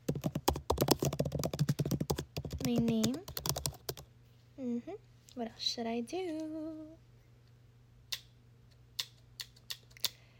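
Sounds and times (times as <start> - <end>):
lip gloss dragged over a computer keyboard clicking keys: 0.1 - 4.0
speech: 2.6 - 3.3, 4.6 - 7.0.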